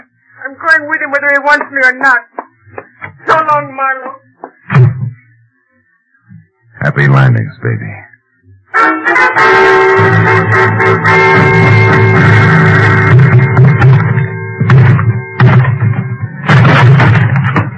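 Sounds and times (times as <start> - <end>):
speech: 0.5 - 2.4, 3.4 - 4.3, 6.8 - 8.1, 8.8 - 13.0
loud sustained dramatic music: 8.8 - 17.7
thumps and banging forcing open a locked closet door: 14.7 - 17.7.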